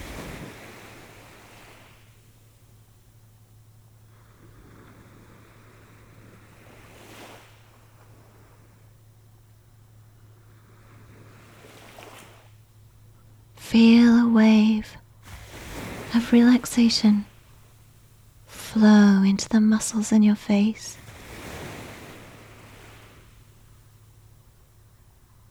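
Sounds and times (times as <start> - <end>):
ocean waves: 0.0 - 25.4
speech: 13.7 - 15.0, 16.2 - 17.3, 18.8 - 21.0.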